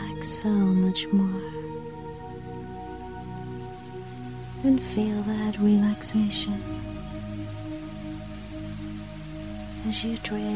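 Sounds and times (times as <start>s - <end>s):
soft gentle rain: 0.0s - 10.5s
speech: 0.2s - 1.7s, 4.6s - 6.9s, 9.9s - 10.5s.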